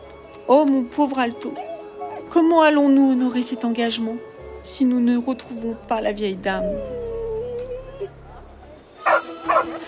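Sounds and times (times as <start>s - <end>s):
speech: 0.5s - 7.1s
dog whining: 1.5s - 2.4s, 6.6s - 8.2s, 9.1s - 9.8s
dog barking: 9.0s - 9.8s.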